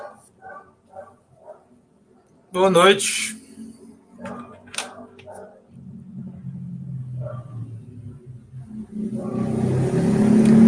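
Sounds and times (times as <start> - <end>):
dog barking: 0.0 - 1.8, 4.2 - 5.7, 7.2 - 7.7, 9.2 - 9.6
speech: 2.5 - 3.4.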